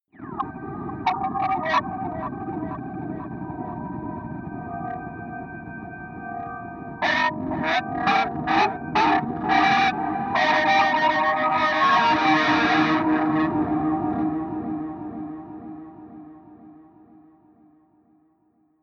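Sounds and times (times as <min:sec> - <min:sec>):
atmospheric feedback distortion: 0:00.2 - 0:04.9, 0:07.0 - 0:16.9.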